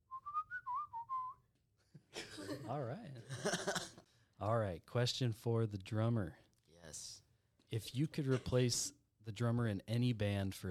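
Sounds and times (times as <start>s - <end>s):
person whistling a short melody: 0.0s - 1.5s
speech: 2.5s - 10.6s.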